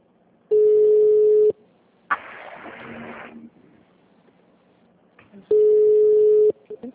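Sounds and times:
ringback tone on a group phone call: 0.5 - 1.5, 5.5 - 6.6.

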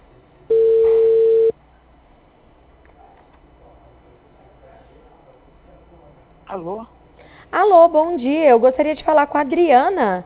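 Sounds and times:
telephone dial tone while calling again: 0.5 - 1.5
speech: 6.6 - 10.2.

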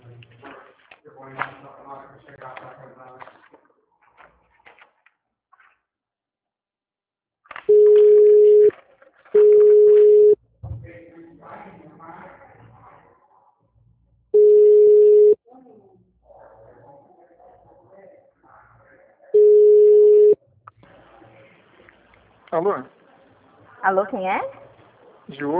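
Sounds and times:
mid-pitched telephone line beeps during a call transfer: 7.7 - 8.7, 9.4 - 10.4, 14.4 - 15.4, 19.4 - 20.4
speech: 22.6 - 22.9, 23.8 - 24.6, 25.4 - 25.5.

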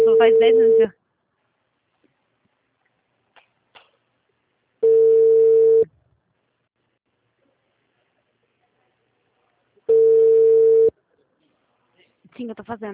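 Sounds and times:
speech: 0.2 - 1.0, 12.4 - 12.9
telephone line tones while a call is being placed: 4.8 - 5.9, 9.9 - 10.9.

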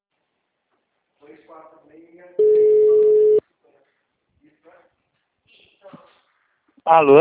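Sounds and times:
speech: 1.3 - 3.2, 6.8 - 7.2
telephone busy tone after a dropped call: 2.4 - 3.4.

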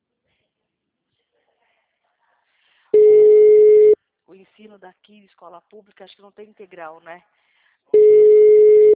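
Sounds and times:
telephone busy signal during a phone call: 3.0 - 4.0, 8.0 - 8.9
speech: 4.4 - 8.0.

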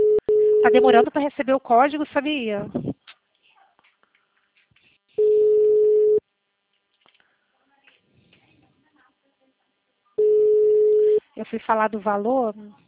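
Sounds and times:
telephone tone after a dropped call: 0.0 - 1.0, 5.2 - 6.2, 10.2 - 11.2
speech: 0.6 - 2.9, 11.4 - 12.8.

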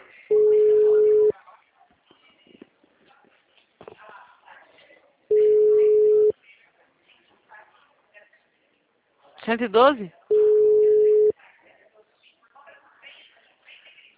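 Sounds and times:
telephone line tone while placing a call: 0.3 - 1.3, 5.3 - 6.3, 10.3 - 11.3
speech: 9.5 - 10.2.

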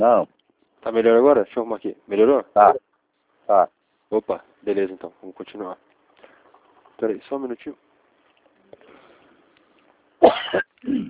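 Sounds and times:
speech: 0.0 - 2.9, 3.5 - 5.9, 7.0 - 7.8
faint rustling: 2.9 - 10.1
person coughing harshly: 10.2 - 11.0.

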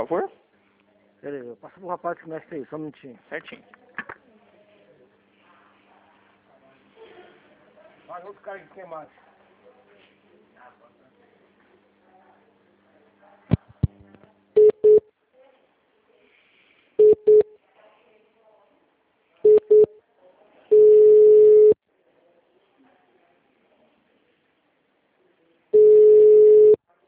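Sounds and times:
speech: 0.0 - 0.4, 1.2 - 3.8, 8.1 - 9.2
short telephone beeps at one pitch: 14.6 - 15.0, 17.0 - 17.5, 19.4 - 19.9, 20.7 - 21.8, 25.8 - 26.8.

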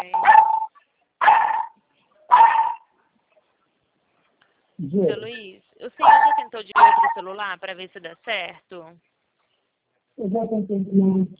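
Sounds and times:
dog barking: 0.1 - 2.9, 6.0 - 7.2
speech: 4.8 - 9.1, 10.2 - 11.3.

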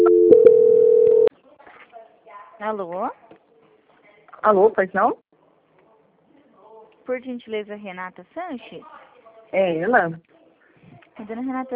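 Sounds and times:
steady single-pitched telephone tone during a call transfer: 0.0 - 1.3
speech: 2.6 - 3.2, 4.4 - 5.2, 7.1 - 10.3, 11.2 - 11.7.

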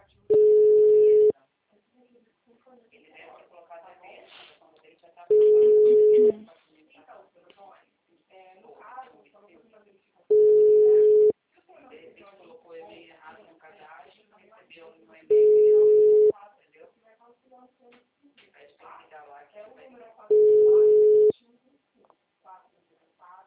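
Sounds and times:
person talking: 0.0 - 1.3, 5.3 - 6.7, 10.3 - 11.3, 15.3 - 16.4, 20.3 - 21.4
telephone ringing: 0.3 - 1.3, 5.3 - 6.4, 10.3 - 11.3, 15.3 - 16.3, 20.3 - 21.3.

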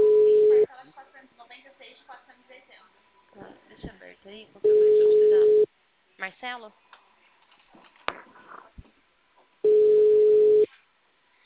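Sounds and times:
ringback tone of an outgoing telephone call: 0.0 - 0.7, 4.6 - 5.7, 9.6 - 10.7
low noise: 0.0 - 11.4
speech: 6.6 - 6.9.

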